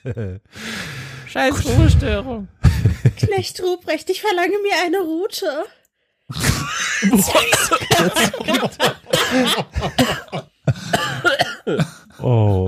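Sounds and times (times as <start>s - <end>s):
laughter: 0.0s - 0.7s, 2.6s - 3.6s, 6.4s - 12.6s
speech: 0.0s - 12.6s
person coughing after choking on red wine: 6.3s - 12.6s.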